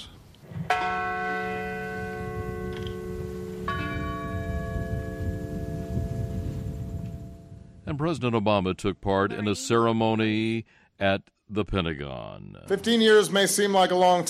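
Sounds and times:
large memorial bell tolling: 0.7 - 7.8
speech: 7.9 - 14.2.

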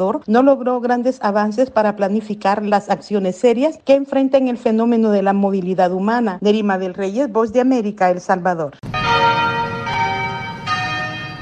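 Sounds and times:
speech: 0.0 - 9.3
church bells ringing at noon from an Anglican cathedral in Cape Town: 8.8 - 11.4.

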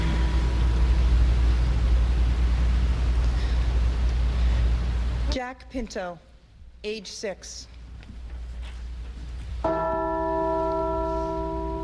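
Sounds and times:
low rumble: 0.0 - 9.6
speech: 5.4 - 7.7
single church bell in Newtown Connecticut struck in honor of shooting victims: 9.6 - 11.8.

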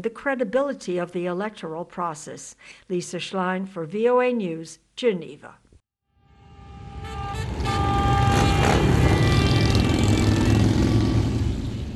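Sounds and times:
speech: 0.0 - 5.6
thousands of motorcycle engines roaring: 7.2 - 11.9.

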